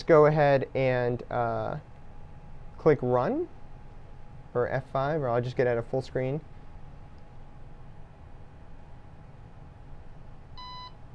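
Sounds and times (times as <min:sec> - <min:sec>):
speech: 0:00.0 - 0:01.9, 0:02.8 - 0:03.6, 0:04.5 - 0:06.5
steady low hum: 0:00.0 - 0:11.1
short high-pitched electronic beep from a programmable robotics brick running a program: 0:10.6 - 0:11.0.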